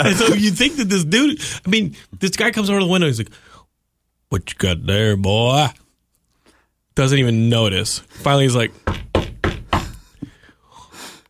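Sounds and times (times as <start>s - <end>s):
speech: 0.0s - 3.5s, 4.3s - 5.8s, 7.0s - 9.1s
knocks on the inside of a door or window: 8.8s - 10.3s.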